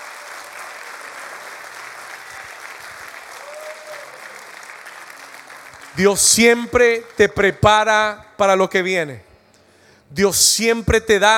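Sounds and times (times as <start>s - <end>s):
large crowd applauding: 0.0s - 7.7s
faint cheering: 2.2s - 4.6s
speech: 6.0s - 9.3s, 10.1s - 11.3s.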